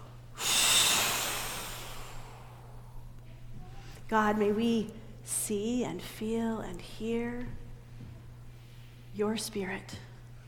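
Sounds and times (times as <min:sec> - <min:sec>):
steady low hum: 0:00.0 - 0:10.4
group taking a big deep breath while lying down: 0:00.3 - 0:03.0
speech: 0:04.1 - 0:07.6, 0:09.2 - 0:10.1.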